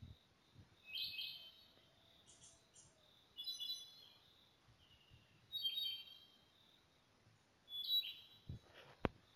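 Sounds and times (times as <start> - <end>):
montane foliage-gleaner calls: 0.8 - 6.4, 7.7 - 9.0.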